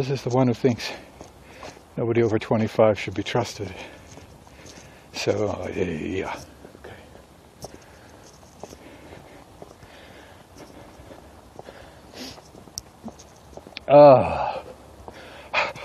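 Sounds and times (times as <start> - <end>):
speech: 0.0 - 1.1, 2.0 - 4.0, 5.2 - 6.5, 13.9 - 14.5
person panting heavily after exertion: 0.9 - 1.9, 3.7 - 5.1, 6.8 - 12.5, 14.1 - 15.8.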